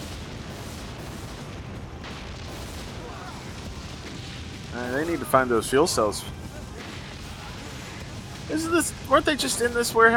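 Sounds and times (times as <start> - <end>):
flames whooshing and rumbling: 0.0 - 10.1
roaring explosion sound effect: 0.0 - 10.1
speech: 4.8 - 6.4, 8.5 - 10.1.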